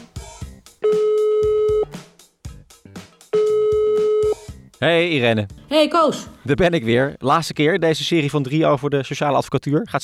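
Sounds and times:
telephone ringing tones as a call is placed: 0:00.8 - 0:02.0, 0:03.4 - 0:04.5
speech: 0:04.8 - 0:10.0.

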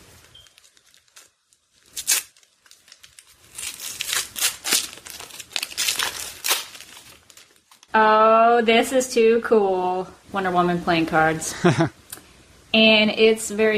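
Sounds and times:
package wrapping crinkled and torn open as a small gift is unwrapped: 0:00.0 - 0:07.9
speech: 0:07.9 - 0:12.0, 0:12.7 - 0:13.7.

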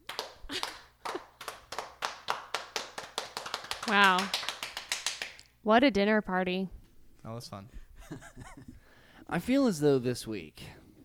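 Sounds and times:
people slow clapping as a sommelier leaves: 0:00.0 - 0:05.5
speech: 0:03.9 - 0:04.4, 0:05.6 - 0:10.8
laughter: 0:08.0 - 0:08.8.

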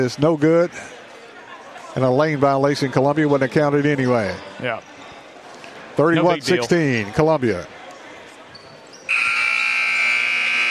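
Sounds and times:
speech: 0:00.0 - 0:01.0, 0:02.0 - 0:04.9, 0:06.0 - 0:07.8
arena crowd murmur: 0:00.0 - 0:09.1
basketball end-of-half electronic buzzer: 0:09.1 - 0:10.6.

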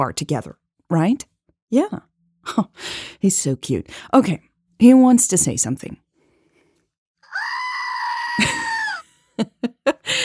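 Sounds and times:
speech: 0:00.0 - 0:06.0, 0:09.4 - 0:10.2
screaming goat toy scream: 0:07.2 - 0:09.0
laughter: 0:08.3 - 0:10.2.

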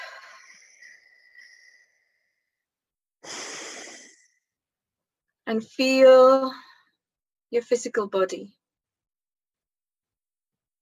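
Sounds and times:
deep breaths during a guided relaxation exercise: 0:00.0 - 0:02.6, 0:03.2 - 0:04.5
speech: 0:05.5 - 0:06.7, 0:07.5 - 0:08.6.

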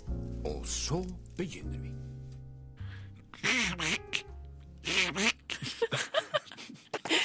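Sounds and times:
speech: 0:00.4 - 0:02.1
raspy cartoonish duck voice quacking, imitated by a human voice: 0:03.4 - 0:05.5
laughter: 0:05.5 - 0:07.2.

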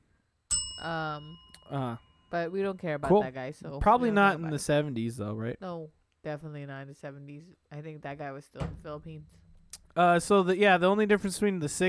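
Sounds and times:
bell being struck: 0:00.5 - 0:03.2
speech: 0:00.8 - 0:09.4, 0:10.0 - 0:11.8.

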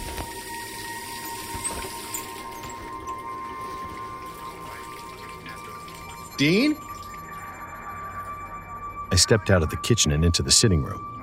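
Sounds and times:
water from a kitchen faucet burbling into a full sink: 0:00.0 - 0:07.3
speech: 0:06.4 - 0:06.9, 0:09.2 - 0:11.2.

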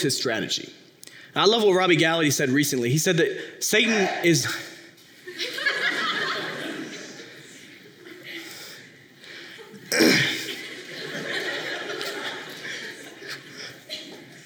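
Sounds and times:
speech: 0:00.0 - 0:04.7
scattered audience laughter: 0:05.3 - 0:08.6, 0:09.6 - 0:14.4
person sneezing: 0:09.9 - 0:10.6.

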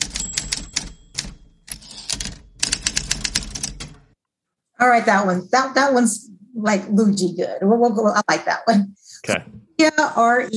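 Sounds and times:
rapid mechanical typewriter keystrokes: 0:00.0 - 0:04.0
speech: 0:04.8 - 0:10.5.

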